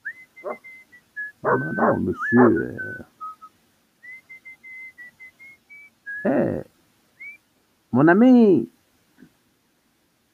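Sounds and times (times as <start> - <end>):
man whistling a short tune: 0.0 - 6.4, 7.2 - 7.4
speech: 1.5 - 3.1, 8.0 - 8.7.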